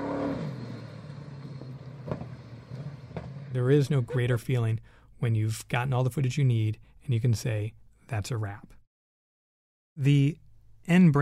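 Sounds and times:
car engine revving during tire burnout: 0.0 - 3.6
tires spinning during burnout: 0.0 - 3.6
speech: 3.6 - 8.8, 10.0 - 11.1.

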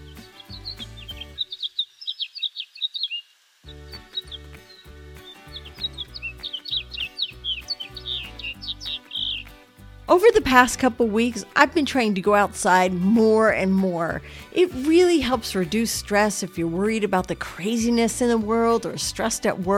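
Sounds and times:
house finches twittering and warbling: 0.0 - 19.7
speech: 10.1 - 19.7.

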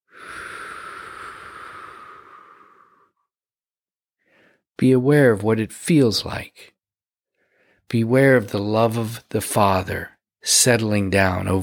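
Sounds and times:
slow deep breath during a guided prayer exercise: 0.0 - 3.3, 4.2 - 4.7, 7.3 - 7.9
speech: 4.8 - 6.7, 7.9 - 11.6.

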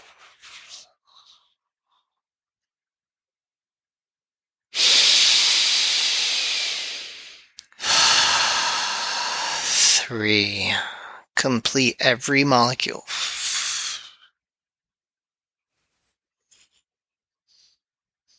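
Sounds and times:
forceful deep exhales during a breathing exercise: 4.8 - 10.0
speech: 10.1 - 13.4.

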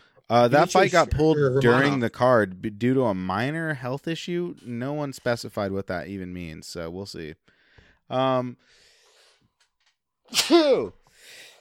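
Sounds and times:
speech: 0.2 - 7.5, 8.1 - 8.8, 10.3 - 11.0
sneeze: 10.3 - 10.9.

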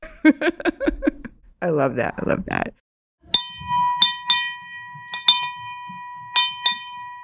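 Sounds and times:
laughter: 0.0 - 1.4
speech: 0.2 - 0.8, 1.6 - 2.8
money bell rung to mark a celebration in a restaurant lobby: 3.3 - 7.2.

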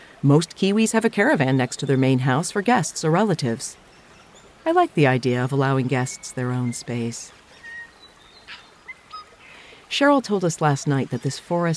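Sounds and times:
soft steady outdoor background in a New Zealand forest: 0.0 - 11.7
speech: 0.2 - 3.9, 4.6 - 7.4, 9.9 - 11.7
birdsong in a New Zealand forest: 7.6 - 9.3.

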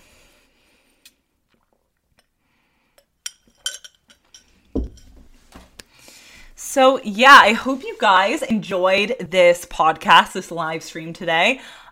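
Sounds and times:
person sipping water from a glass with slurping and swallowing: 1.0 - 2.4
soft clinks of a glass: 3.2 - 5.2
glass set down with a thump: 4.8 - 5.3
speech: 6.8 - 11.9.

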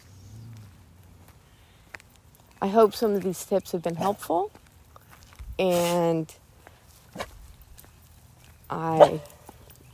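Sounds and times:
speech: 2.6 - 4.6, 5.6 - 6.4, 8.7 - 9.3
leashed dog barking at a basketball hoop: 9.0 - 9.4.

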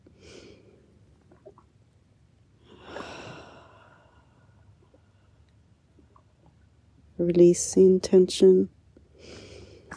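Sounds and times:
slow deep breathing: 2.6 - 5.6, 9.1 - 9.9
speech: 7.2 - 9.4.

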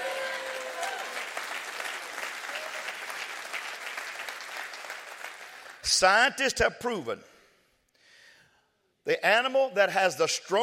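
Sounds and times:
large audience applauding during a sermon: 0.0 - 5.8
speech: 5.9 - 7.3, 9.0 - 10.6.

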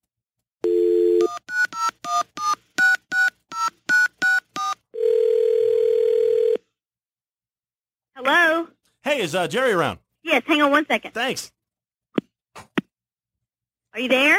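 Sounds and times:
short steady phone tone: 0.6 - 1.7, 4.0 - 6.7
touch-tone keypad beeps: 1.2 - 4.8
speech: 9.1 - 11.6, 14.0 - 14.3.

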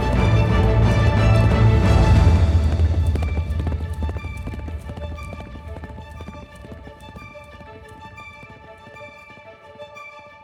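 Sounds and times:
low rumbling background: 0.0 - 7.8
horse hooves clip-clopping: 0.0 - 10.2.

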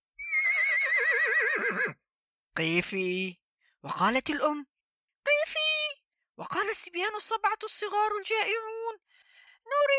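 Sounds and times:
loud quavering horse whinny: 0.2 - 2.0
speech: 2.6 - 4.7, 6.4 - 9.9.

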